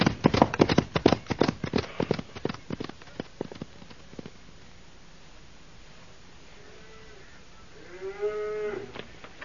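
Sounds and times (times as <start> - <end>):
hooves clattering in a rapid uneven clip-clop: 0.0 - 4.4
thirsty cow mooing: 6.6 - 9.0.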